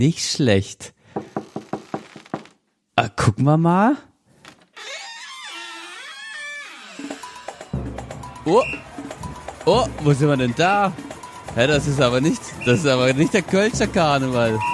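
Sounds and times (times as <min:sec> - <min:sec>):
speech: 0:00.0 - 0:01.0, 0:03.0 - 0:04.1, 0:08.5 - 0:08.9, 0:09.6 - 0:14.7
sharp knocks on a door: 0:01.2 - 0:02.5
door creaking open with a rising squeal: 0:01.2 - 0:02.6, 0:04.4 - 0:07.8.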